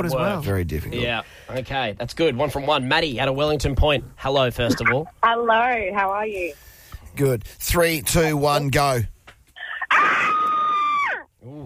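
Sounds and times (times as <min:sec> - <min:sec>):
speech: 0:00.0 - 0:09.1, 0:11.4 - 0:11.6
brief shorter cry: 0:09.6 - 0:11.6
person screaming loudly: 0:09.7 - 0:11.3.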